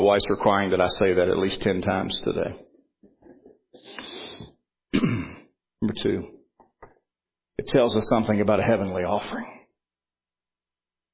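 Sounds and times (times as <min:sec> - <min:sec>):
speech: 0:00.0 - 0:02.7, 0:05.8 - 0:06.4, 0:07.6 - 0:09.6
man with pneumonia coughing: 0:04.9 - 0:05.5.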